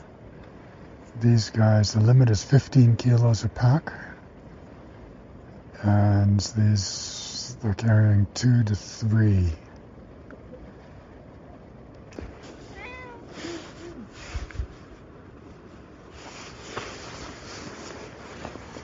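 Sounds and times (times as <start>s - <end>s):
steady hiss: 0.0s - 11.2s, 11.8s - 18.8s
speech: 1.2s - 4.1s, 5.8s - 9.6s
rustling: 12.1s - 18.8s
stray cat meowing: 12.6s - 14.0s.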